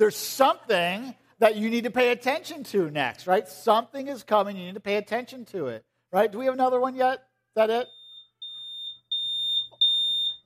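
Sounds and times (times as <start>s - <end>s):
speech: 0.0s - 8.0s
smoke alarm beeping: 7.6s - 10.4s.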